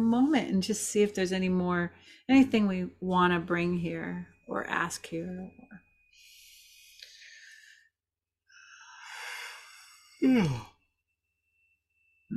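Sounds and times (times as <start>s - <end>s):
speech: 0.0s - 5.6s, 10.2s - 10.7s
person yawning with a voiced groan: 10.2s - 10.7s.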